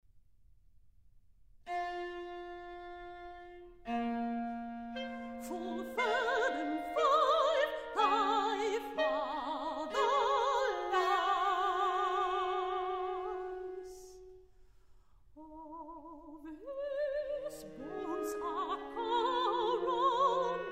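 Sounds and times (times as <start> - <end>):
clarinet: 1.7 - 14.4, 16.7 - 20.7
flute: 1.7 - 14.4, 17.0 - 20.7
viola: 1.7 - 14.4, 15.4 - 20.7
person singing: 5.3 - 14.2, 15.4 - 20.7.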